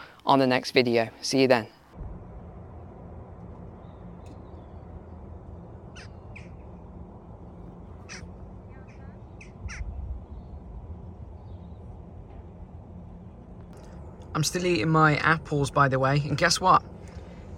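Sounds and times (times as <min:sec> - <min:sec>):
speech: 0:00.3 - 0:01.8, 0:14.4 - 0:17.0
steady outdoor rumble of wind: 0:01.8 - 0:17.5
seagulls calling in short harsh squawks: 0:05.8 - 0:06.7, 0:07.9 - 0:10.6.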